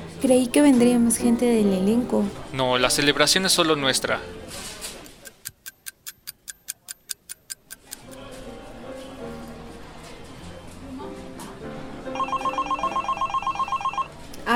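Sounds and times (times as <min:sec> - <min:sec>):
music: 0:00.0 - 0:05.0, 0:07.8 - 0:14.5
murmur: 0:00.0 - 0:05.4, 0:07.8 - 0:14.5
speech: 0:00.2 - 0:04.6
telephone ringing with bell-like trills: 0:12.2 - 0:14.2.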